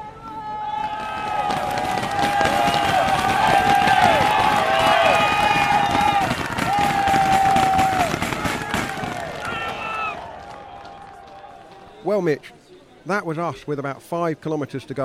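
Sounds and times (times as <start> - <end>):
Belgian fans cheering riders on a cycling race climb: 0.0 - 12.0
speech: 12.2 - 15.0.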